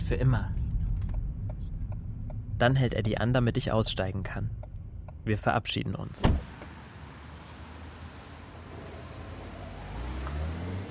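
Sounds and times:
broad road noise: 0.0 - 10.8
car engine low steady rumble: 0.0 - 10.8
speech: 0.1 - 0.6, 2.6 - 4.6, 5.2 - 6.5.

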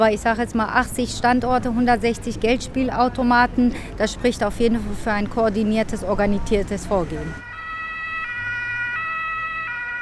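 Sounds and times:
speech: 0.0 - 7.5
low rumble of traffic: 0.0 - 10.0
emergency vehicle siren wailing on a main street in Schöneberg: 7.0 - 10.0.

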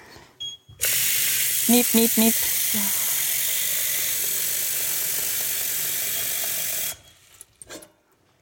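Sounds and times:
speech: 1.7 - 3.0
tap water pouring into a cooking pot: 3.4 - 7.0.

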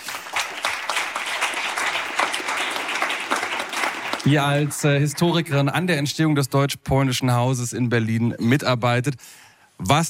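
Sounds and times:
audience applause at an evening panel discussion: 0.0 - 5.9
speech: 4.2 - 10.0.

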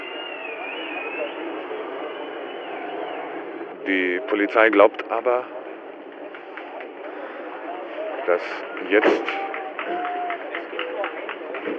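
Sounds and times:
faint wavering whistles at changing of the guard: 0.0 - 3.7
crowd noise: 0.0 - 11.7
speech: 3.9 - 5.6, 8.3 - 10.1.

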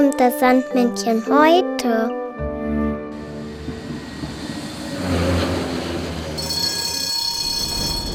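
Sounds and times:
speech: 0.2 - 2.2
tonal whine of tram: 3.1 - 8.1
tram running on rails: 3.2 - 8.1.

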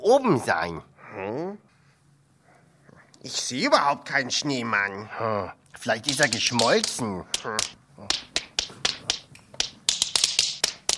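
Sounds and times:
speech: 0.1 - 1.7, 3.2 - 8.3
tap dance steps with crisp metallic clicks: 6.1 - 10.9.

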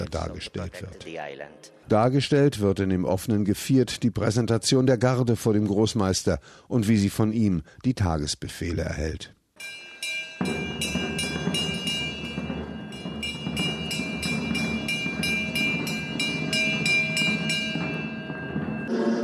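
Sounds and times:
speech: 0.1 - 9.8, 10.4 - 11.1
fort alarm bell clanging rapidly during a re-enactment: 9.6 - 19.1.

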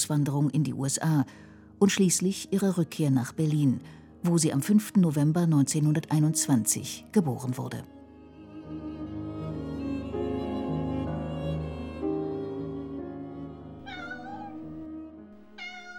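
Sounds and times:
soft music: 0.0 - 15.9
speech: 0.1 - 8.0
cat meowing: 13.8 - 15.9.

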